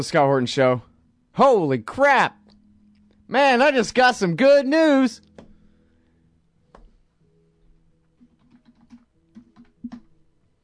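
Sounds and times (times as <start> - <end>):
speech: 0.0 - 2.4, 3.3 - 5.3
faint steady hum: 0.0 - 4.2, 4.8 - 8.2
computer keyboard typing: 8.2 - 10.1.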